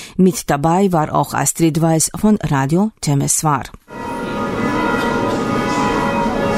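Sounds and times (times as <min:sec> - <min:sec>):
speech: 0:00.2 - 0:03.8
church bells ringing from a spire tower of a Roman Catholic church: 0:03.9 - 0:06.5.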